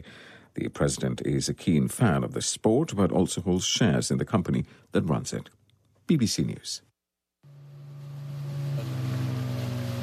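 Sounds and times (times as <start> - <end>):
speech: 0.6 - 6.9
motorboat engine humming while coming ashore on island: 7.4 - 10.0.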